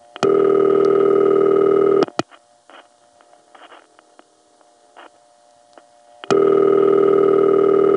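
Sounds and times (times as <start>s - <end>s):
old crossbar telephone ringback tone: 0.2s - 2.0s, 6.3s - 7.9s.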